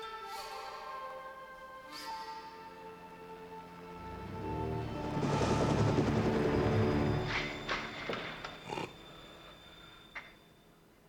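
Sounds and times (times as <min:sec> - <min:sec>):
helicopter flying with dense rumbling roar: 0:04.0 - 0:08.8.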